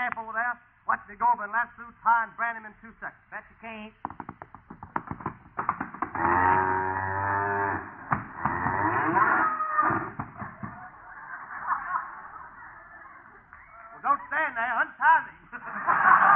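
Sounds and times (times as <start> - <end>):
speech: 0.1 - 4.3
quick clattering knocks: 4.0 - 6.6
cow mooing: 6.2 - 10.0
laughter: 9.2 - 16.3.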